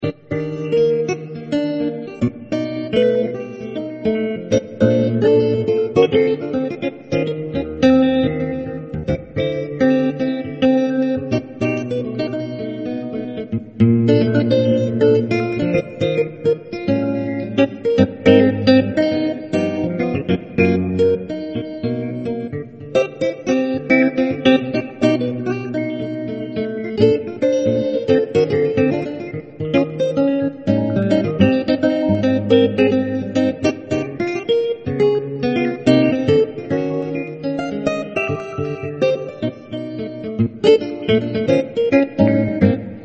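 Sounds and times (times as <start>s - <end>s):
nylon-string guitar tone with effects applied: 0.0s - 43.0s.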